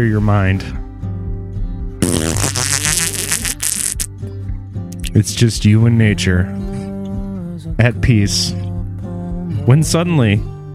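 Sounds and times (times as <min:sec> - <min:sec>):
speech: 0:00.0 - 0:00.8, 0:05.2 - 0:06.7, 0:07.8 - 0:08.6, 0:09.6 - 0:10.5
long slow loud fart: 0:02.0 - 0:04.1.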